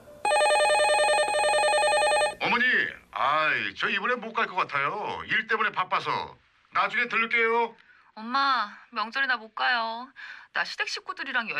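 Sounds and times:
telephone ringing with a trilling bell tone: 0:00.2 - 0:02.5
speech: 0:03.5 - 0:11.5.

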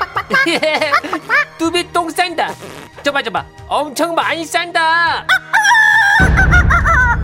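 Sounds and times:
laughter: 0:00.0 - 0:01.6, 0:06.1 - 0:07.2
speech: 0:00.4 - 0:01.8, 0:03.2 - 0:06.0
rooster crowing on an apartment balcony: 0:05.3 - 0:07.2.

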